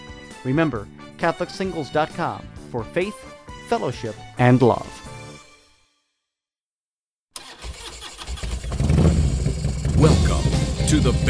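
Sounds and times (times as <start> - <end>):
speech: 0.4 - 5.1, 10.9 - 11.2
engine kickstarted and revving: 7.4 - 11.2.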